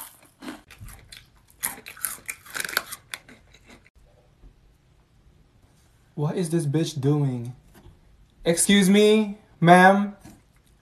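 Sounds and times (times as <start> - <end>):
loud chewing with wet crunchy bites and smacking: 0.0 - 3.9
speech: 6.2 - 7.6, 8.4 - 10.2.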